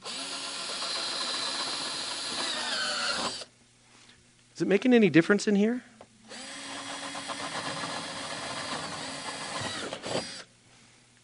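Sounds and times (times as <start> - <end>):
power drill whirring while drilling holes: 0.0 - 3.5, 6.3 - 10.5
speech: 4.6 - 5.9.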